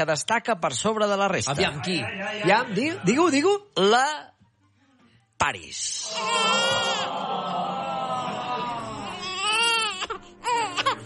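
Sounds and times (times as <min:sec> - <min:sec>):
speech: 0:00.0 - 0:04.3, 0:05.4 - 0:07.6
newborn baby crying: 0:06.0 - 0:07.2, 0:08.2 - 0:11.0
laughter: 0:06.1 - 0:09.4.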